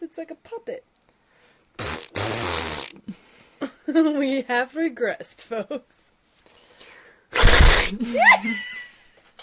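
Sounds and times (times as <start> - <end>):
speech: 0.1 - 1.0, 1.8 - 6.0, 7.3 - 8.7
armpit fart imitation: 1.8 - 3.1, 7.3 - 8.0.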